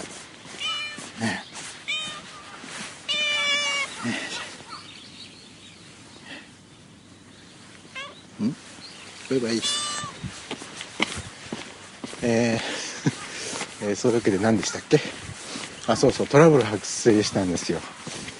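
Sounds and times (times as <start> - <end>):
cat meowing: 0.6 - 1.2, 1.8 - 4.0, 7.9 - 8.2, 9.5 - 10.3
speech: 1.2 - 1.4, 9.3 - 9.9, 13.8 - 15.3, 15.9 - 18.2
laughter: 12.5 - 13.6.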